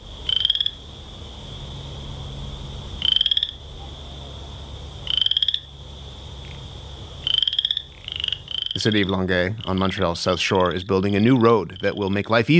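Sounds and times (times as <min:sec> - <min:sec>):
Western chorus frog calling with short rising trills: 0:00.2 - 0:00.8, 0:03.0 - 0:05.7, 0:06.4 - 0:12.2
speech: 0:08.8 - 0:12.5.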